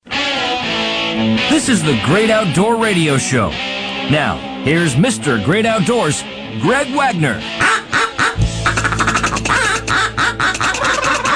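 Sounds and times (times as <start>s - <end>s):
speech: 1.2s - 7.7s
several turkeys gobbling loudly: 7.6s - 11.3s.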